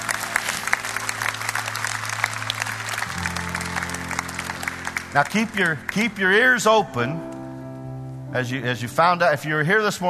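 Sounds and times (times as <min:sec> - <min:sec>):
large church audience applauding at an evening service: 0:00.0 - 0:06.5
speech: 0:05.2 - 0:07.4, 0:08.3 - 0:10.0.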